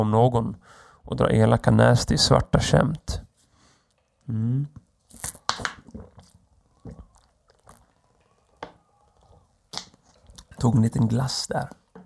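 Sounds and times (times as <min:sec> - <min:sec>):
speech: 0:00.0 - 0:03.2, 0:04.3 - 0:05.4, 0:10.6 - 0:11.8
person drinking water in a forest: 0:03.7 - 0:10.7
wet mouth clicks: 0:03.8 - 0:08.6, 0:09.2 - 0:10.6
swallowing: 0:03.8 - 0:10.7.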